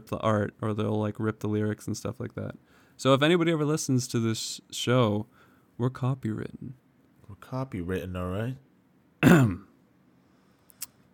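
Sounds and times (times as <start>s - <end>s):
speech: 0.0s - 9.7s
loud throat-clearing cough: 9.2s - 9.7s.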